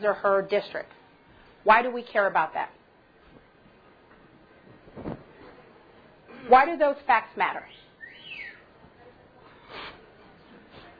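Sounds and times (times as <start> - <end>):
speech: 0.0 - 1.0, 1.6 - 2.8, 6.4 - 7.8
soft rustling: 3.2 - 5.7
bird chirp: 7.7 - 8.7.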